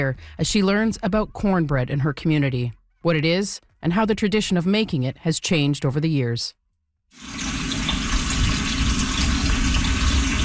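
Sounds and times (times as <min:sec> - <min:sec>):
speech: 0:00.0 - 0:07.5
water from a tap filling a pot to boil for cornbread outside Montreal: 0:07.2 - 0:10.4.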